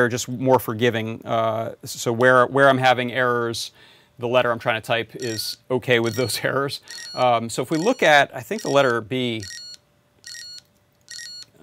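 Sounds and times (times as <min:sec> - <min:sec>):
speech: 0:00.0 - 0:09.6
electronic beeping from a device sending letters as binary codes: 0:05.2 - 0:11.5.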